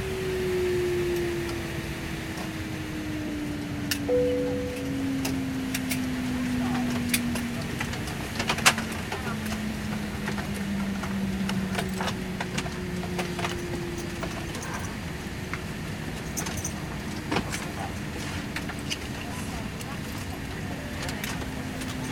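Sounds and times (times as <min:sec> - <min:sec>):
commercial Airbus A340 interior disembarkation ambience: 0:00.1 - 0:22.0.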